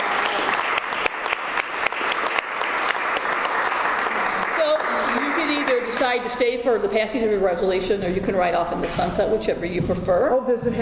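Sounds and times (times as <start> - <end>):
crowd applauding: 0.0 - 6.5
speech: 6.2 - 10.7.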